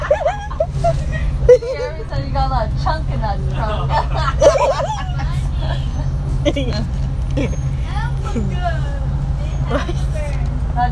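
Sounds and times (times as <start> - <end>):
people laughing inside a bus: 0.0 - 2.2, 3.5 - 8.7, 9.6 - 10.2
low engine rumble of a moving bus: 0.0 - 10.9
people chattering inside a bus: 0.0 - 10.9
speech: 2.1 - 9.0, 9.7 - 10.0.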